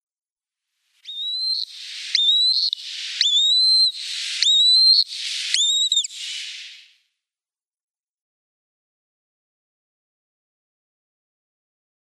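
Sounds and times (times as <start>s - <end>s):
downy young Water Rail: 1.1s - 6.8s.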